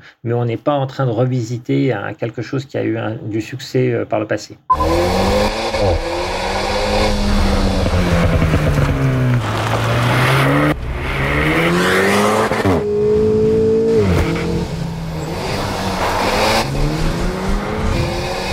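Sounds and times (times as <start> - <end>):
speech: 0.1 - 6.1
Alpine Renault sports car engine revving through gear changes on mountain roads: 4.7 - 18.5
tires squealing on winding roads: 4.8 - 18.5.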